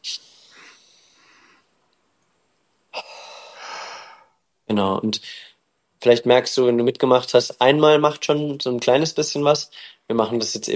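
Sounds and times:
person inhaling in a breathing exercise: 0:00.2 - 0:01.8, 0:03.0 - 0:04.4
speech: 0:04.7 - 0:10.7.

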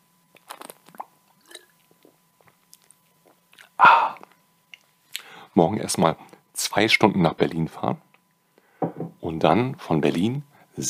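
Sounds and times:
person drinking and swallowing beer: 0:00.4 - 0:04.4
speech: 0:05.6 - 0:08.1, 0:09.3 - 0:10.8.

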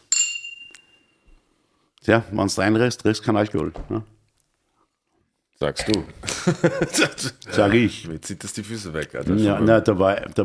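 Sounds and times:
glasses clinking in a toast: 0:00.0 - 0:01.3
speech: 0:02.1 - 0:04.2, 0:05.6 - 0:10.4
laughter: 0:06.2 - 0:07.8.

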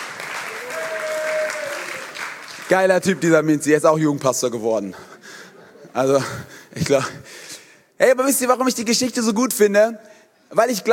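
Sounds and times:
crowd applauding with dense clapping: 0:00.0 - 0:03.4
speech: 0:02.7 - 0:05.1, 0:06.0 - 0:07.2, 0:08.0 - 0:10.9.

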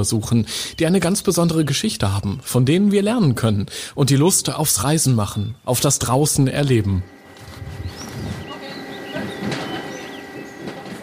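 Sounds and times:
speech: 0:00.0 - 0:07.2
constant mechanical hum: 0:06.5 - 0:11.0
faint bird chirps: 0:07.0 - 0:10.6
low rumble of a train moving through a railway station: 0:07.2 - 0:11.0.

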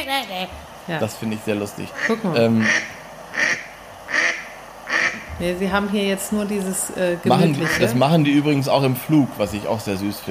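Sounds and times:
speech: 0:00.0 - 0:03.0, 0:05.4 - 0:10.2
mallard duck quacking: 0:02.0 - 0:05.3, 0:07.6 - 0:08.0.

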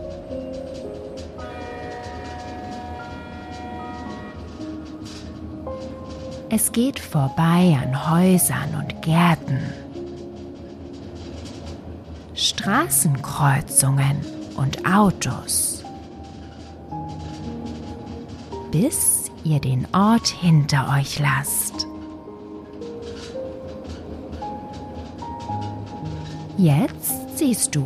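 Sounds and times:
steam locomotive rail rumble as train departs: 0:00.0 - 0:27.8
steam locomotive whistle hooting: 0:01.4 - 0:04.6
speech: 0:06.5 - 0:09.8, 0:12.6 - 0:15.7, 0:18.7 - 0:21.6, 0:26.6 - 0:27.8.

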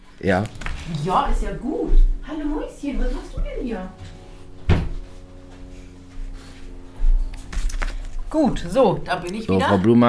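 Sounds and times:
speech: 0:00.2 - 0:04.2, 0:08.3 - 0:10.0
door thudding open to let a dog in: 0:04.6 - 0:05.0.

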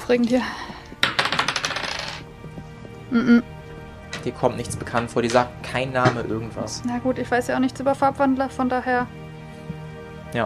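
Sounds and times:
speech: 0:00.1 - 0:00.8, 0:03.1 - 0:03.6, 0:04.2 - 0:09.2
dice clattering: 0:01.0 - 0:02.2
person humming or murmuring: 0:03.1 - 0:03.5.

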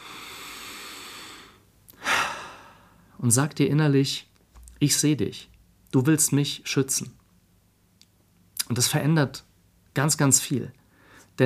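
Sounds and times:
slow breath drawn in during a calm breathing exercise: 0:00.0 - 0:03.1, 0:10.9 - 0:11.3
speech: 0:03.2 - 0:07.2, 0:08.7 - 0:10.8.

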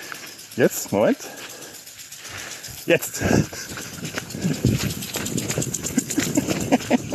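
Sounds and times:
lawn sprinkler spraying in a baroque Renaissance garden: 0:00.0 - 0:07.1
quick footsteps running past through a sprinkler: 0:00.0 - 0:07.1
speech: 0:00.6 - 0:01.5, 0:02.9 - 0:05.1
laughter: 0:03.0 - 0:07.1.

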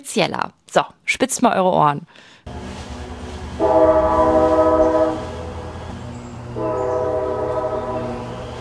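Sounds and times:
speech: 0:00.0 - 0:02.8
old train horn blasts: 0:02.5 - 0:08.5.

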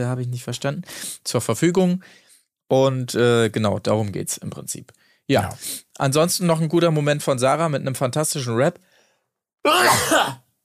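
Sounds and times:
speech: 0:00.0 - 0:08.9, 0:09.6 - 0:10.4
person sneezing: 0:09.7 - 0:10.4.

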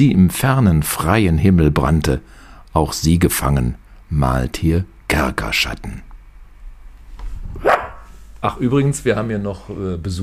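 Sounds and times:
speech: 0:00.0 - 0:06.1, 0:08.4 - 0:10.2
low room hum: 0:00.0 - 0:10.2
dog barking: 0:07.6 - 0:08.1.

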